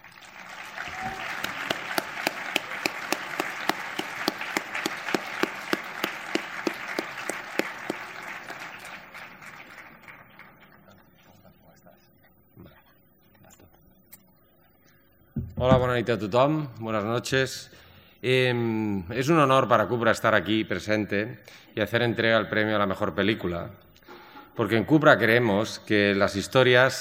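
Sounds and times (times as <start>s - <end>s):
audience at a film awards ceremony applauding: 0.0s - 11.7s
speech: 15.6s - 23.8s, 24.6s - 27.0s.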